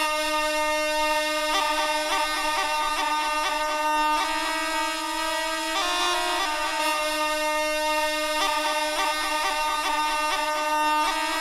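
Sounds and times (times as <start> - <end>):
loud brassy foghorn blaring: 0.0 - 11.3.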